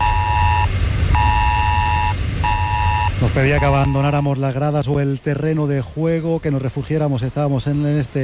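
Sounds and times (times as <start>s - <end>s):
loud piercing mobile phone emergency alert tone: 0.0s - 4.2s
low rumbling background of wind or crowd noise: 0.0s - 8.2s
speech: 3.4s - 8.2s.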